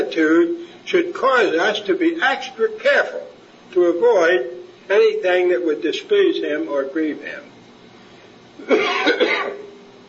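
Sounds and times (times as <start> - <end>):
speech: 0.0 - 7.5, 8.6 - 9.6
person coughing: 8.6 - 9.7
throat clearing: 8.6 - 9.7.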